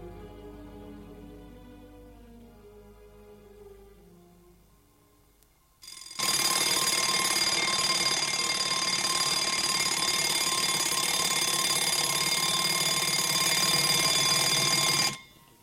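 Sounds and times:
alarm clock ringing with metallic buzzing tone: 5.9 - 15.5.

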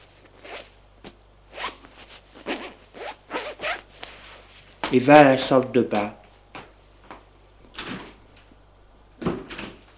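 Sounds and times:
trouser zipper zipping as trousers are pulled up: 0.3 - 0.7, 1.5 - 3.9
speech: 4.9 - 6.2.

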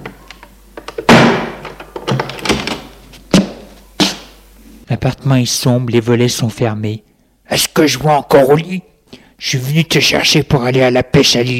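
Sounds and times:
apartment door being handled and shut: 1.0 - 2.9
speech: 5.1 - 11.5.

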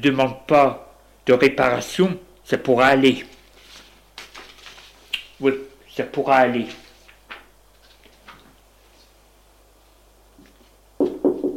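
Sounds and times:
speech: 0.0 - 3.4, 5.4 - 6.8
firm knocking on a door: 11.0 - 11.5.

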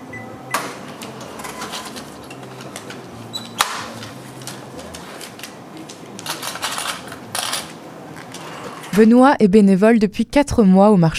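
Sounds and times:
cash register bright ring: 0.2 - 2.7
cash register mechanical clicks: 0.5 - 7.8
steady murmur of a busy market: 0.8 - 9.0
cash register rattling keys and drawer noise: 1.0 - 9.0
speech: 9.0 - 11.1.

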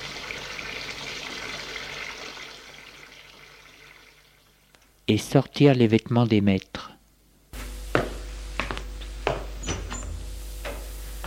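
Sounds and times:
heated bath water running into a tub: 0.0 - 4.7
speech: 5.1 - 6.9.

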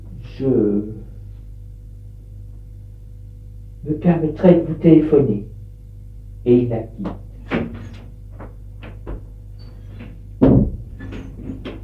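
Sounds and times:
speech: 0.4 - 1.0, 3.9 - 5.5, 6.4 - 7.3
door swinging shut with a solid thud: 7.5 - 8.0, 10.4 - 11.3.

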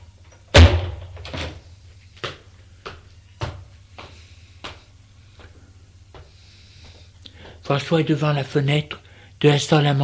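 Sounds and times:
low steady hum: 0.0 - 10.0
door slamming shut: 0.5 - 1.6
speech: 7.7 - 10.0.

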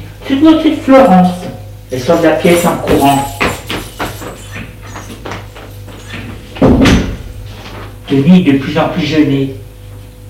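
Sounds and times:
speech: 0.3 - 3.3, 8.1 - 9.6
front door opening indoors: 2.6 - 7.9.

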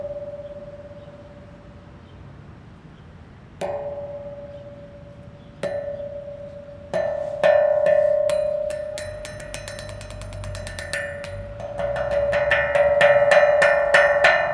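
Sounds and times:
metal pot: 3.6 - 14.5.

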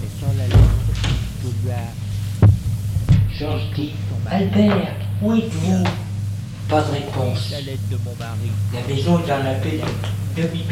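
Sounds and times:
voices murmuring: 0.0 - 10.6
wooden door opening and shutting: 0.5 - 1.4
speech: 3.4 - 6.1, 6.7 - 10.6.

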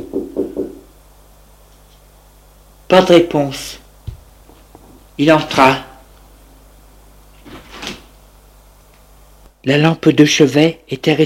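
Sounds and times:
dull knocks on a door: 0.0 - 0.8
speech: 2.9 - 3.8, 5.2 - 5.9, 9.6 - 11.2.

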